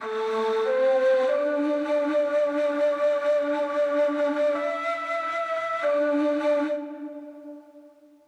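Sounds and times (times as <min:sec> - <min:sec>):
flute melody in A minor: 0:00.0 - 0:08.1.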